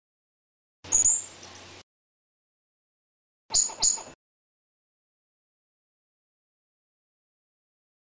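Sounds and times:
squirrel high-pitched squeaks: 0:00.9 - 0:01.3, 0:03.5 - 0:04.2.

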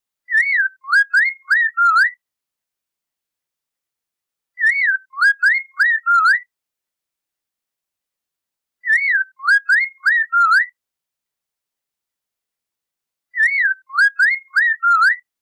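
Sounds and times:
poksay mandarin bird singing variations: 0:00.3 - 0:02.1, 0:04.6 - 0:06.4, 0:08.8 - 0:10.6, 0:13.4 - 0:15.3.

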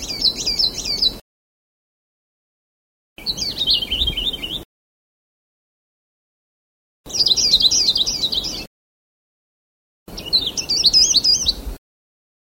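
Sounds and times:
Sulawesi leaf warbler warbling: 0:00.0 - 0:01.2, 0:03.2 - 0:04.7, 0:07.1 - 0:08.7, 0:10.1 - 0:11.6.

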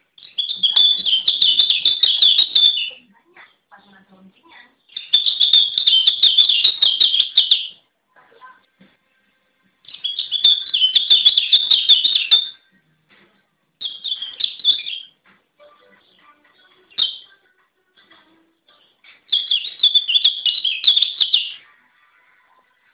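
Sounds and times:
Lombok pleci bird singing: 0:00.0 - 0:03.1, 0:04.6 - 0:07.9, 0:09.8 - 0:12.8, 0:13.8 - 0:15.3, 0:16.6 - 0:17.4, 0:18.1 - 0:21.9.

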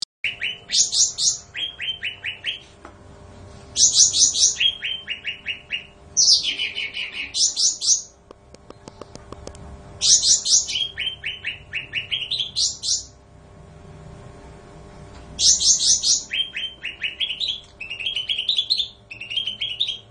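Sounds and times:
bulbul song with rapid repeated sharp notes: 0:00.2 - 0:02.7, 0:03.8 - 0:08.2, 0:10.0 - 0:13.2, 0:15.4 - 0:20.0
faint steady hum: 0:00.2 - 0:20.0
speech: 0:00.7 - 0:01.4.

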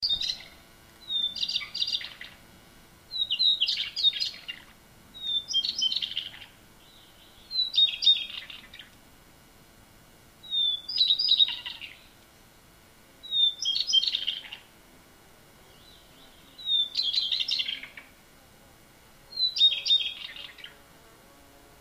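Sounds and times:
blue bird call: 0:00.0 - 0:02.4, 0:03.1 - 0:08.9, 0:10.4 - 0:12.1, 0:13.2 - 0:14.7, 0:15.6 - 0:18.1, 0:19.3 - 0:20.8.

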